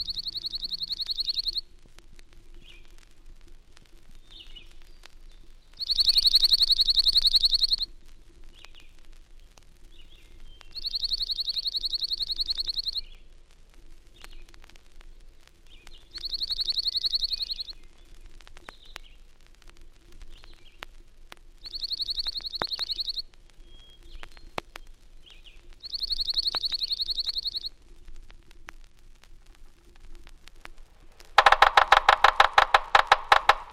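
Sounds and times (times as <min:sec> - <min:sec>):
slate-colored junco dry rapid trill: 0:00.0 - 0:01.6, 0:05.8 - 0:07.9, 0:10.8 - 0:13.1, 0:16.2 - 0:17.8, 0:21.6 - 0:23.2, 0:25.8 - 0:27.7, 0:31.4 - 0:33.7.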